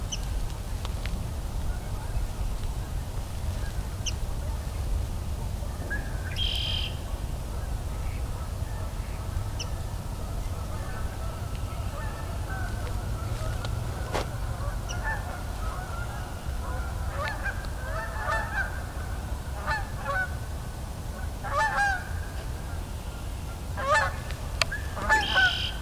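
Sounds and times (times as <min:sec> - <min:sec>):
steady low rumble of wind or traffic: 0:00.0 - 0:25.8
Canada geese honking: 0:08.1 - 0:25.8.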